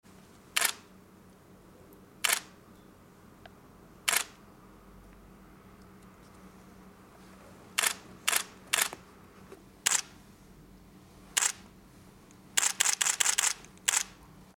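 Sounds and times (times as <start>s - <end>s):
camera shutter release: 0.6s - 0.8s, 2.2s - 2.5s, 4.1s - 4.4s, 7.8s - 9.0s, 9.9s - 10.1s, 11.4s - 11.6s, 12.6s - 14.2s.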